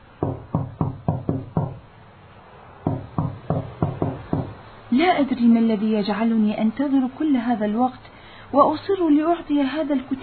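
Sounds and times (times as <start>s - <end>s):
firm knocking on a door: 0.2s - 1.8s, 2.8s - 4.6s
speech: 5.0s - 10.2s.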